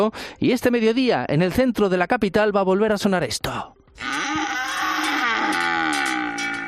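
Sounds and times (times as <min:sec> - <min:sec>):
speech: 0:00.0 - 0:04.6
cows mooing: 0:04.0 - 0:06.6.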